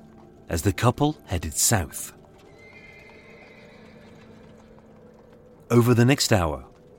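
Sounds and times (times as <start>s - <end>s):
horse-drawn carriage hooves clip-clopping crossing the River Thames: 0.0s - 6.9s
speech: 0.5s - 2.2s, 5.7s - 6.7s
drawn-out horse whinny: 2.5s - 4.8s.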